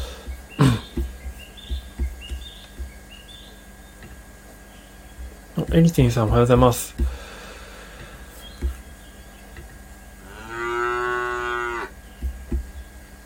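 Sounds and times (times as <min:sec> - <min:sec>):
soft thumps: 0:00.0 - 0:04.3, 0:05.1 - 0:07.2, 0:08.0 - 0:08.9, 0:12.2 - 0:13.0
speech: 0:05.7 - 0:07.2
cow mooing: 0:10.2 - 0:11.9.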